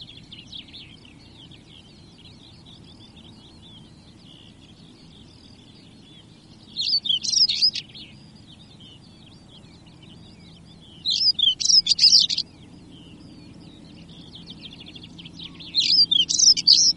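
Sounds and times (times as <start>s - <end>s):
soft high European stonechat chatter: 0.0s - 16.9s
European stonechat twittering: 6.6s - 8.0s, 11.0s - 12.5s, 14.1s - 16.9s.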